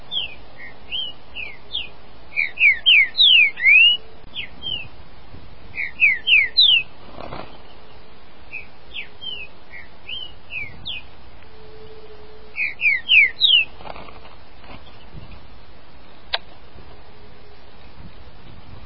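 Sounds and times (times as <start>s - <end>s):
caged saltator bird calling: 0.0s - 5.0s, 5.7s - 16.4s.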